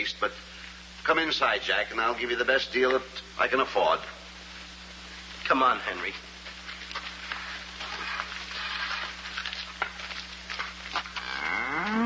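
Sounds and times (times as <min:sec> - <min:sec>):
speech: 0:00.0 - 0:04.2, 0:05.5 - 0:06.3
low hum: 0:00.0 - 0:12.0
cow mooing: 0:11.2 - 0:12.0.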